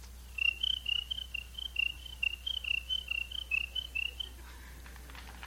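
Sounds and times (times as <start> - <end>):
dense hissing chorus of night insects: 0.2 - 4.5
old bullfrog croaking at night: 0.3 - 4.5.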